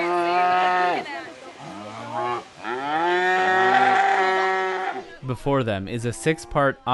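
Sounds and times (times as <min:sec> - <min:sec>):
several cattle mooing at the Cow Olympics at the Oregon State Fair: 0:00.0 - 0:01.0, 0:01.6 - 0:05.1
speech: 0:05.3 - 0:06.9.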